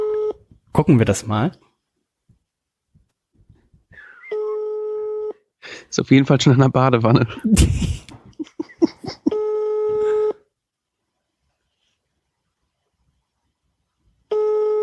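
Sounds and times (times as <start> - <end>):
speech: 0.8 - 1.7, 5.9 - 8.7
dialing tones: 4.0 - 5.3, 9.3 - 10.4, 14.3 - 14.8
phone ringback tone: 4.3 - 5.4, 9.3 - 10.5, 14.3 - 14.8
laughter: 7.3 - 9.4.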